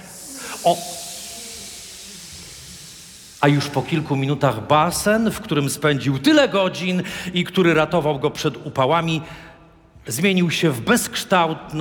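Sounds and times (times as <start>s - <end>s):
air hissing out of blue inflatable pool valve: 0.0s - 5.0s
speech: 0.6s - 1.0s, 3.4s - 11.7s.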